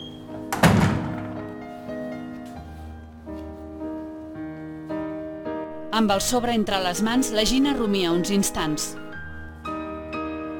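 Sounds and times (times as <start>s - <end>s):
door shutting thunk: 0.5s - 1.4s
soft sustained music: 1.4s - 10.5s
speech: 6.0s - 9.0s.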